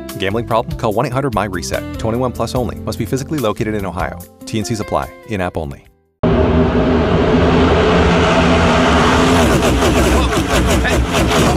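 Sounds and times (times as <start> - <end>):
speech: 0.2 - 5.9
NASCAR race car engines roaring: 6.2 - 11.5.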